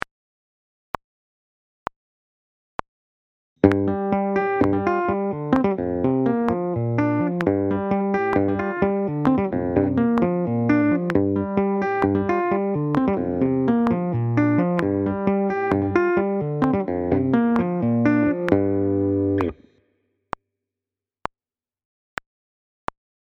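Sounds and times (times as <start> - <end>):
metal rhythm guitar: 3.6 - 19.6.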